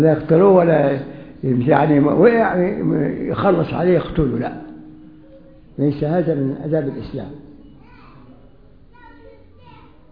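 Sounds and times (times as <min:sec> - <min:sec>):
speech: 0:00.0 - 0:04.7, 0:05.8 - 0:07.5
women and children chattering in a room: 0:05.0 - 0:05.8, 0:06.7 - 0:10.1.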